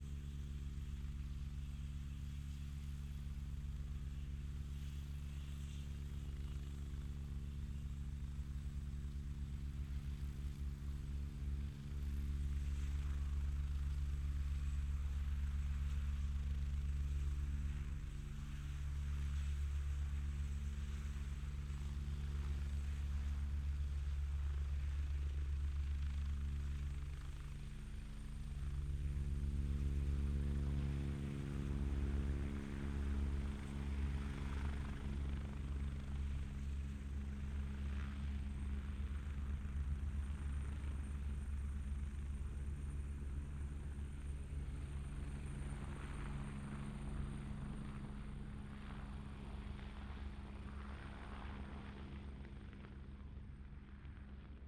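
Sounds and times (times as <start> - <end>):
Agusta A109 helicopter idling and taking off: 0.1 - 54.6.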